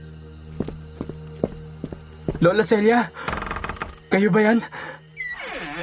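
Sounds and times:
footsteps hurrying up the stairs to the second floor of a house: 0:00.6 - 0:02.5
speech: 0:02.4 - 0:03.4, 0:04.1 - 0:05.0.

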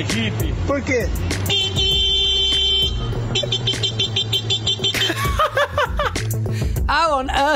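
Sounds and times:
speech: 0:00.0 - 0:01.7, 0:06.9 - 0:07.5
man vocally imitating a car horn beeping: 0:01.4 - 0:05.2
laughter and chuckling: 0:05.0 - 0:06.2.

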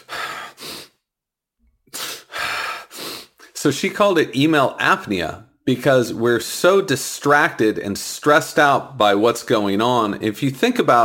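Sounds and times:
person breathing: 0:00.0 - 0:01.0, 0:01.9 - 0:03.6
sharp gasping inhale after holding breath: 0:00.0 - 0:01.0, 0:01.9 - 0:03.6
speech: 0:03.6 - 0:11.0.

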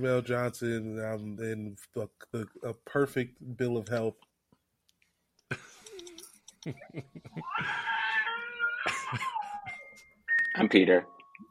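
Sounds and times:
speech: 0:00.0 - 0:04.3, 0:06.6 - 0:08.1, 0:09.1 - 0:09.4, 0:10.6 - 0:11.2
man's voice imitating a baby screaming: 0:07.4 - 0:09.7.

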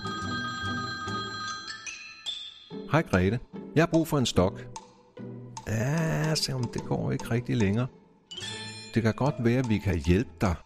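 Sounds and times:
telephone ringing with bright electronic tones: 0:00.0 - 0:02.2
speech: 0:02.9 - 0:04.8, 0:05.7 - 0:10.6.

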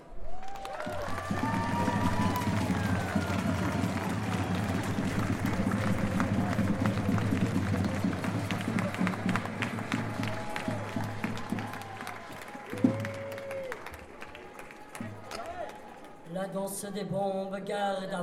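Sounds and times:
crowd applauding: 0:00.0 - 0:16.3
rumbling crowd murmur: 0:00.8 - 0:13.3
speech: 0:16.8 - 0:18.2.

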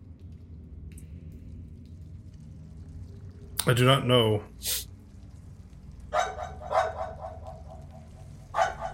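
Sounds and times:
low steady rumble: 0:00.0 - 0:08.9
speech: 0:03.6 - 0:04.9
dog barking: 0:06.2 - 0:08.9.

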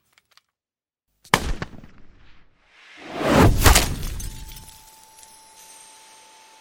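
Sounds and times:
gunshot: 0:01.3 - 0:02.4, 0:03.1 - 0:04.6
debris scattering: 0:03.5 - 0:05.4
car window glass shattering: 0:03.5 - 0:05.9.

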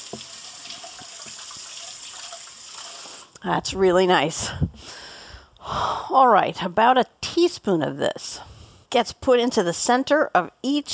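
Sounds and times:
kitchen tap running while hands are washed: 0:00.0 - 0:03.3
speech: 0:00.1 - 0:00.4, 0:03.4 - 0:05.0, 0:05.7 - 0:10.9.

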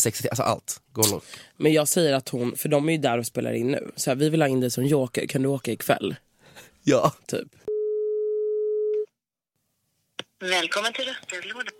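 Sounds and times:
speech: 0:00.0 - 0:07.6, 0:10.4 - 0:11.7
telephone ringing tone of an outgoing call: 0:07.7 - 0:09.0.

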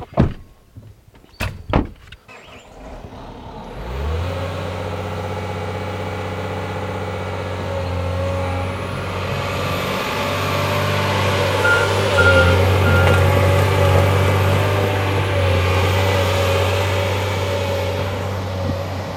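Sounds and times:
heavy diesel tree-felling machine engine drone: 0:02.6 - 0:19.1
faint repeating reversing beep: 0:11.6 - 0:13.6.

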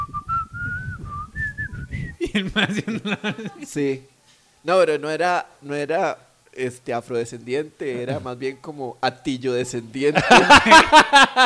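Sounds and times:
man whistling a slow plaintive tune at a traffic light: 0:00.0 - 0:02.2
laughter: 0:02.2 - 0:03.6, 0:10.1 - 0:11.4
speech: 0:02.4 - 0:11.4.

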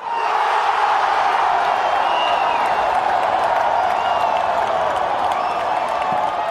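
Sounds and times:
huge football stadium crowd cheering and chanting: 0:00.0 - 0:06.4
whistles in a stadium crowd: 0:01.6 - 0:06.2.

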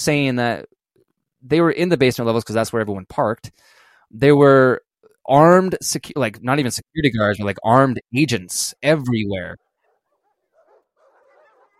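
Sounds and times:
speech: 0:00.0 - 0:00.7, 0:01.4 - 0:09.6
dog whining and yelping: 0:09.6 - 0:11.7.

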